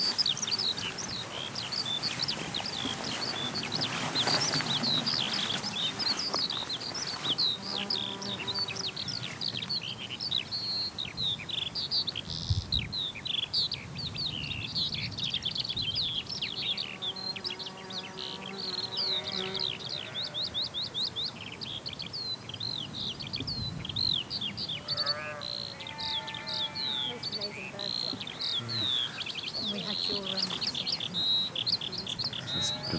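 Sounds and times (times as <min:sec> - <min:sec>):
skylark singing: 0:00.0 - 0:32.9.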